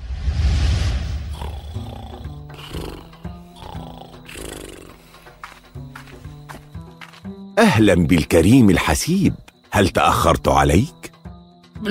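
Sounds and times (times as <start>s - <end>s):
lion roaring: 1.2s - 5.1s
speech: 7.6s - 11.0s.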